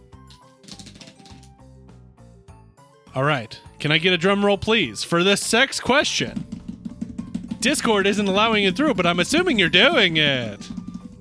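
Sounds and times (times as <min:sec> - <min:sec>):
riffle of cards being shuffled: 0:00.3 - 0:01.6
speech: 0:03.1 - 0:06.5, 0:07.6 - 0:10.7.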